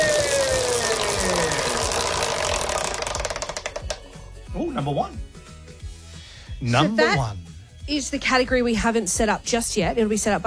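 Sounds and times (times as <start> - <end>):
prize wheel given a big spin: 0.0 - 4.1
speech: 4.8 - 5.3, 6.6 - 10.4.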